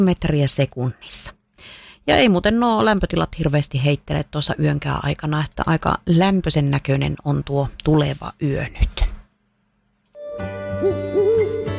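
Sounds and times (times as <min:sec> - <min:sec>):
speech: 0:00.0 - 0:09.0
owl hooting: 0:10.8 - 0:11.7.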